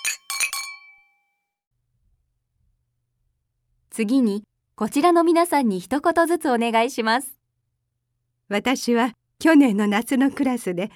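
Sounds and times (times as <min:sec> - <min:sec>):
bright glass clinks: 0:00.0 - 0:01.3
speech: 0:04.0 - 0:07.4, 0:08.5 - 0:10.9.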